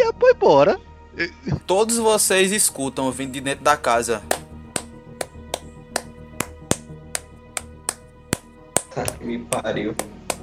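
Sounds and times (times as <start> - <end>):
speech: 0.4 - 4.4, 9.0 - 10.2
hands clapping inside a house: 4.3 - 10.4.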